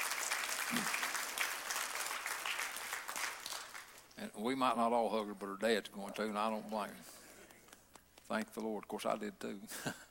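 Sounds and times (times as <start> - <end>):
audience applause: 0.0 - 4.1
speech: 0.7 - 1.0, 4.2 - 7.2, 8.3 - 10.0.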